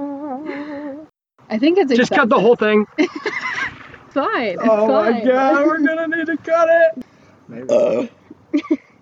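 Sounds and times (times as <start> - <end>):
speech: 1.5 - 3.3, 4.1 - 8.8
low rumbling burp: 7.6 - 8.2.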